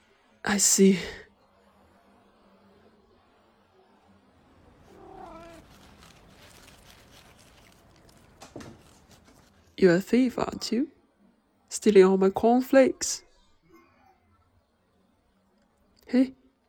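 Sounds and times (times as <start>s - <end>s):
speech: 0.4s - 1.2s, 9.8s - 11.0s, 11.7s - 13.2s, 16.1s - 16.4s
steady rustling: 4.7s - 9.8s
stray cat meowing: 4.8s - 6.8s.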